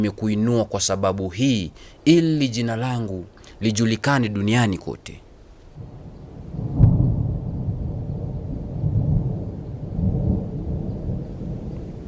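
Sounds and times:
speech: 0.0 - 5.2
heavy rain: 5.8 - 12.0
thunder rumbling in a storm: 5.8 - 12.0.

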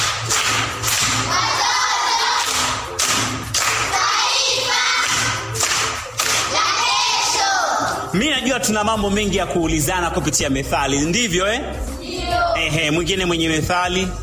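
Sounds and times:
group clapping to reward a correct answer in a proverb quiz: 0.0 - 7.9
speech: 8.2 - 12.0, 12.6 - 14.2.

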